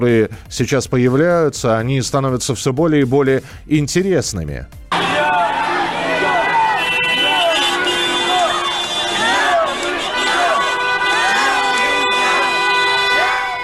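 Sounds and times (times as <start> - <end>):
speech: 0.0 - 5.0
large protest crowd chanting and shouting slogans: 4.9 - 13.6.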